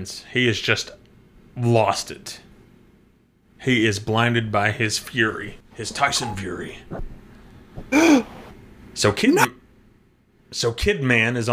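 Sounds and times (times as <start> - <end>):
speech: 0.0 - 1.0, 1.6 - 2.4, 3.6 - 7.2, 7.8 - 8.3, 9.0 - 9.5, 10.5 - 11.5
person gasping: 7.8 - 8.4.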